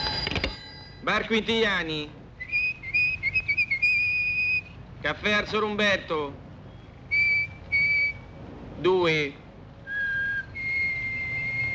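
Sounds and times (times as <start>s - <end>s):
speech: 1.0s - 2.2s, 5.0s - 6.4s, 8.8s - 9.4s
person whistling to communicate: 2.4s - 4.7s, 7.1s - 8.2s, 9.9s - 11.7s.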